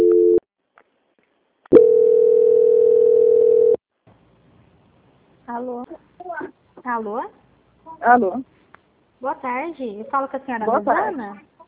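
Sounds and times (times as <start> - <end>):
telephone tones during a bank call transfer: 0.0 - 0.4, 1.7 - 3.8
speech: 6.9 - 7.4, 8.0 - 8.5, 9.2 - 11.5.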